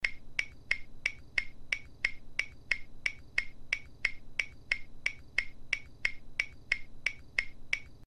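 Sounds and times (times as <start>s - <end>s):
audio timer: 0.0s - 8.0s.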